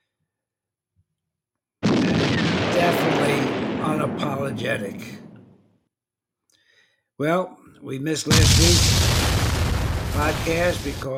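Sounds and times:
barrage of explosions: 0:01.8 - 0:05.6, 0:08.3 - 0:11.1
speech: 0:04.2 - 0:05.2, 0:07.2 - 0:09.2, 0:10.2 - 0:11.1.

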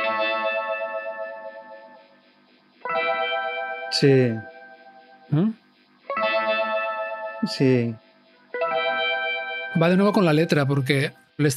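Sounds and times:
bright high electric guitar with phaser effect: 0:00.0 - 0:11.5
speech: 0:03.9 - 0:04.5, 0:05.3 - 0:05.6, 0:07.4 - 0:08.0, 0:09.7 - 0:11.5.

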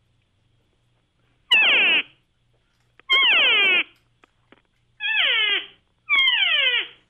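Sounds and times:
mouth-blown open reed game call imitating a cow, sliding high to low: 0:03.1 - 0:04.0, 0:05.0 - 0:07.0.

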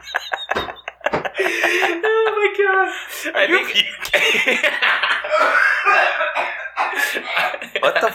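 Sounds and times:
laughter-like breaths: 0:00.0 - 0:02.2, 0:02.9 - 0:08.1
speech: 0:01.4 - 0:08.1
man's strained cough merging with a hiccup or burp: 0:05.4 - 0:07.6.

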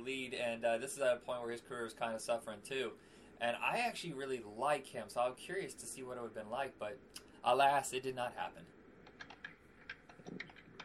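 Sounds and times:
speech: 0:00.0 - 0:08.8
typing on a computer keyboard: 0:09.0 - 0:10.8.

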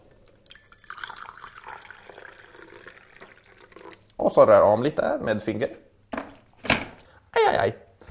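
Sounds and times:
hot water poured into a cup: 0:00.2 - 0:04.2
speech: 0:04.2 - 0:05.8, 0:07.6 - 0:07.8.

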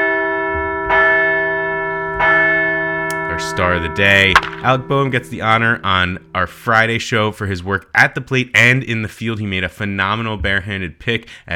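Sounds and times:
large resonant bell ringing: 0:00.0 - 0:08.4
speech: 0:03.4 - 0:11.5.

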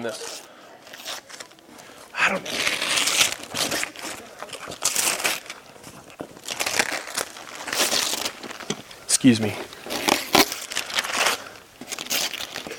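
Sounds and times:
speech: 0:00.0 - 0:00.4, 0:02.3 - 0:02.8, 0:09.2 - 0:09.7
wrapping paper being torn off a gift: 0:00.1 - 0:08.7, 0:09.4 - 0:12.7.

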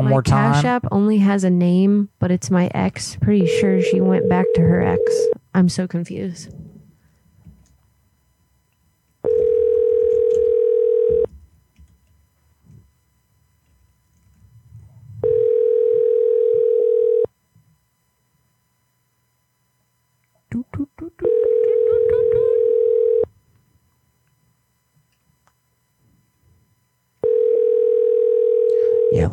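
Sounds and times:
speech: 0:00.0 - 0:06.7
ringback tone of an unanswered telephone call: 0:03.4 - 0:05.4, 0:09.2 - 0:11.3, 0:15.2 - 0:17.3, 0:21.2 - 0:23.3, 0:27.2 - 0:29.2.

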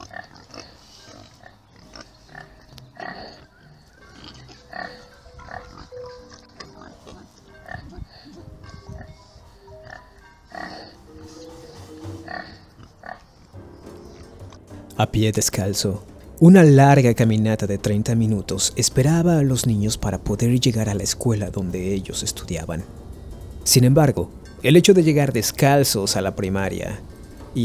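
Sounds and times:
pigs oinking and grunting: 0:00.0 - 0:14.7
speech: 0:15.0 - 0:23.0, 0:23.6 - 0:27.6.

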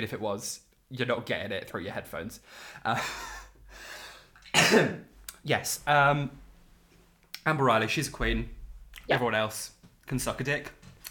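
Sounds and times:
speech: 0:00.0 - 0:03.9, 0:04.5 - 0:06.4, 0:07.4 - 0:10.8
person coughing: 0:04.4 - 0:05.1.

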